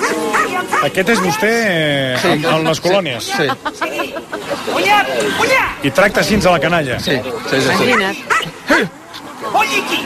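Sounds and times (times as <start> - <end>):
dog giving short high yipping barks: 0.0 - 1.4, 7.8 - 8.6
speech: 0.8 - 9.0
laughter: 1.1 - 5.8.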